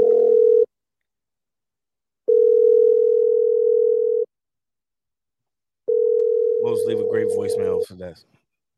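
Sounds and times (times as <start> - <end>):
electronic ringback tone from a phone call: 0.0 - 0.7, 2.3 - 4.3, 5.9 - 7.8
speech: 7.2 - 8.4.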